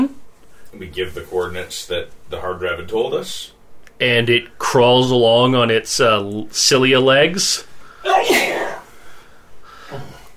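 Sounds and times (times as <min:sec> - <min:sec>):
speech: 0:00.8 - 0:08.4
loud exaggerated performed sneeze: 0:08.0 - 0:08.9.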